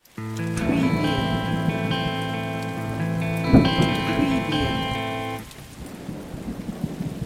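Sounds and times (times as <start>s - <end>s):
clean electric guitar arpeggio in slow rock 6-8 A minor: 0.0s - 5.5s.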